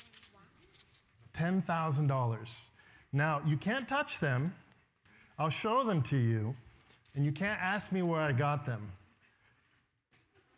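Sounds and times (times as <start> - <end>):
ancient gold coins jingling inside a bag on a stage: 0.0 - 1.2
speech: 1.4 - 4.6, 5.4 - 9.0.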